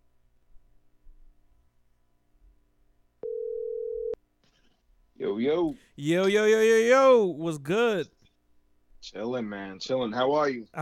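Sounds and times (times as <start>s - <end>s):
phone line ringing for a call: 3.2s - 4.2s
speech: 5.2s - 8.2s, 9.0s - 10.8s.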